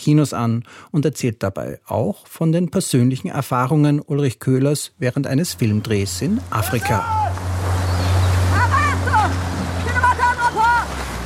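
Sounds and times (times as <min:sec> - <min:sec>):
speech: 0:00.0 - 0:07.4
motorboat engine droning approaching a beach: 0:05.4 - 0:11.2
waves washing around a motorboat: 0:05.4 - 0:11.2
indistinct voices calling out: 0:05.5 - 0:07.6, 0:08.2 - 0:11.0.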